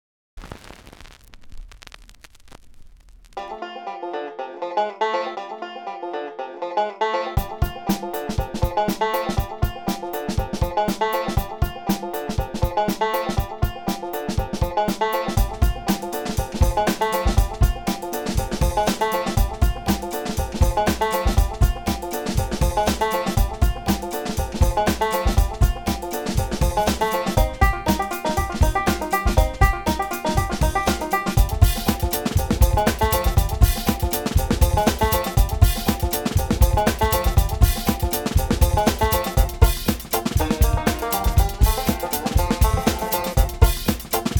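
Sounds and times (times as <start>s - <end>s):
banjo beats: 3.4s - 44.3s.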